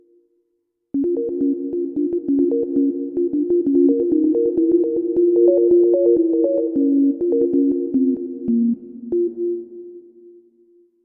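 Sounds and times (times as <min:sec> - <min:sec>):
digital piano: 0:01.0 - 0:09.9
sine lead synth: 0:01.0 - 0:10.8.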